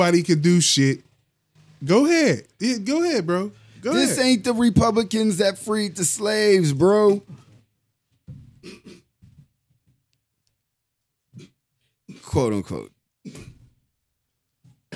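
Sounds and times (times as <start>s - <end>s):
speech: 0.0s - 1.1s, 1.8s - 7.4s, 12.3s - 13.4s
man coughing and choking: 3.9s - 4.3s, 8.6s - 9.2s, 11.3s - 12.5s, 13.2s - 13.6s.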